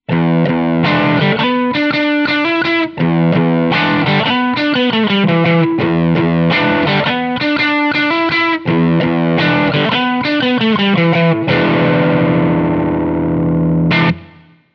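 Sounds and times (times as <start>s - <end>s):
crunch drive electric guitar with bridge pickup in parallel: 0.0s - 14.7s.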